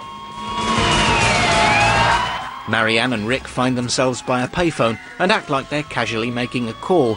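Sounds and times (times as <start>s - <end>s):
low squad car rumble: 0.0s - 5.3s
police car sirens wailing as squad cars arrive outside a bank: 0.0s - 7.1s
speech: 2.7s - 7.1s.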